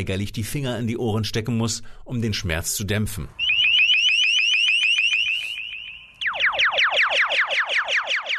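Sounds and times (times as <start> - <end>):
speech: 0.0 - 3.4
directional loudspeaker sound cannon blaring piercing car-alarm-like noise: 3.4 - 8.3.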